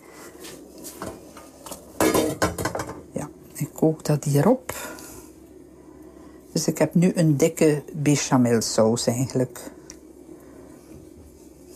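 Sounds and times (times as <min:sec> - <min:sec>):
pot and utensil clatter: 0:01.4 - 0:03.1
speech: 0:03.8 - 0:04.9, 0:06.6 - 0:09.8.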